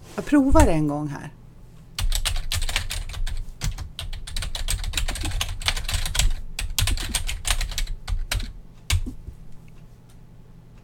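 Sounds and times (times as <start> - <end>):
speech: 0.2 - 1.4
typing on a computer keyboard: 2.0 - 9.2.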